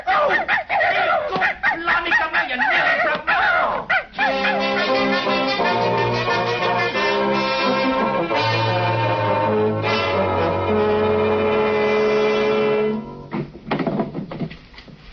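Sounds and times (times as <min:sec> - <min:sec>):
dog yapping and barking excitedly: 0:00.0 - 0:05.2
sustained music: 0:04.2 - 0:13.5.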